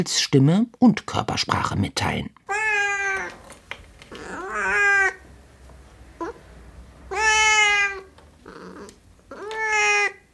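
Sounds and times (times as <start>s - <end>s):
speech: 0.0s - 2.4s
cat meowing in drawn-out wavering calls: 2.5s - 3.4s, 4.1s - 5.2s, 6.2s - 6.4s, 7.1s - 10.3s.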